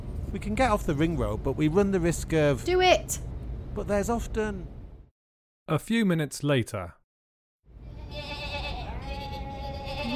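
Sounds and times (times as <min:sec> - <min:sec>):
low rumbling noise: 0:00.0 - 0:05.1, 0:07.7 - 0:10.1
speech: 0:00.3 - 0:04.8, 0:05.7 - 0:07.0
flock of sheep bleating: 0:08.0 - 0:10.1.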